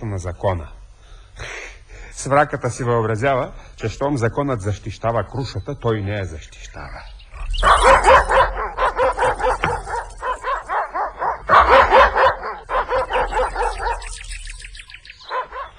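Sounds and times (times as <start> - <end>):
speech: 0.1 - 0.8, 2.2 - 8.3
dog barking aggressively: 7.6 - 14.6, 15.2 - 15.7.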